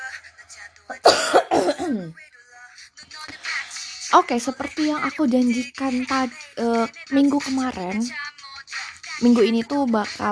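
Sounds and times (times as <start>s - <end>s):
rough raspy coughing and throat clearing: 1.0s - 2.2s
speech: 1.9s - 2.3s, 4.1s - 8.2s, 9.2s - 10.3s.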